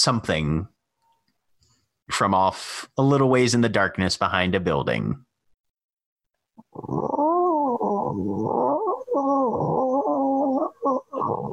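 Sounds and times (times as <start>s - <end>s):
speech: 0.0s - 0.7s, 2.1s - 5.3s, 6.8s - 7.4s, 8.1s - 11.5s
person imitating a cat growling and purring: 6.6s - 11.5s.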